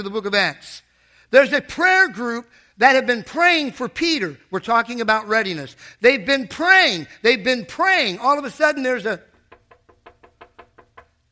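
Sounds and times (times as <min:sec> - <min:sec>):
speech: 0:00.0 - 0:09.3
knocking on a door: 0:09.3 - 0:11.2.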